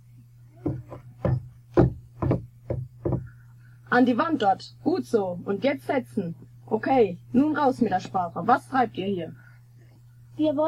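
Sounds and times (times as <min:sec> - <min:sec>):
low constant hum: 0:00.0 - 0:10.6
hollow wooden clunks of a wooden door being worked open: 0:00.6 - 0:03.3
speech: 0:03.9 - 0:09.4, 0:10.4 - 0:10.6.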